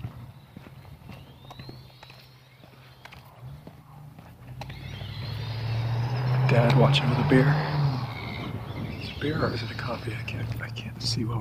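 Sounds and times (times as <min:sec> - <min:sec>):
clacks of skateboard casters over the pavement: 0:00.0 - 0:05.5, 0:08.2 - 0:11.3
speech: 0:06.5 - 0:07.8, 0:09.2 - 0:11.3.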